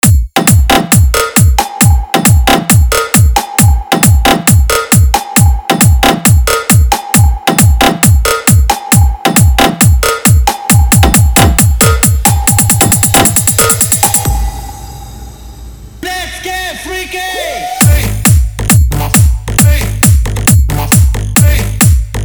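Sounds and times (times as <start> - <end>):
hard bass vibration beat: 0.0 - 14.9, 15.8 - 22.2
spoken dialogue: 16.0 - 18.2.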